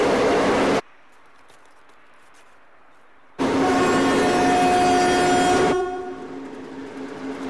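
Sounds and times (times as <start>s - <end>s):
train approaching along the railway track: 0.0s - 1.0s, 3.1s - 7.4s
sustained whining horn-like tone of a train: 3.5s - 6.4s.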